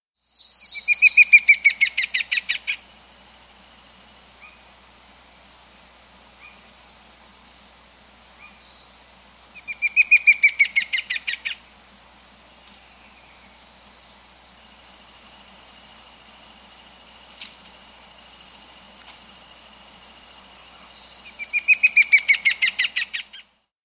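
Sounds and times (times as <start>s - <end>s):
Todd's Antwren in South America: 0.2s - 2.9s, 4.3s - 4.7s, 6.4s - 6.7s, 8.3s - 11.7s, 20.6s - 23.6s.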